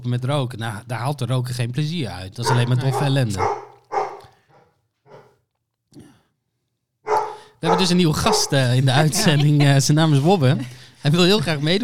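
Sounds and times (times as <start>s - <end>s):
speech: 0.0s - 3.7s, 7.6s - 11.8s
dog barking: 2.4s - 5.4s, 7.1s - 8.6s
laughter: 7.7s - 11.8s.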